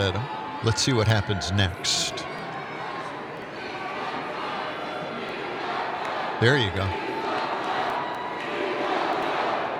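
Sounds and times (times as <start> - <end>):
speech: 0.0 - 2.3, 6.4 - 7.0
large crowd chanting a slogan in unison: 1.9 - 9.7.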